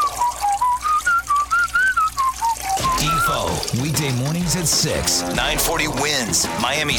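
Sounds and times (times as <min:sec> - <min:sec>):
man whistling a bouncy tune at a urinal: 0:00.0 - 0:03.5
running water hiss at a urinal: 0:00.0 - 0:06.9
speech: 0:03.7 - 0:06.9.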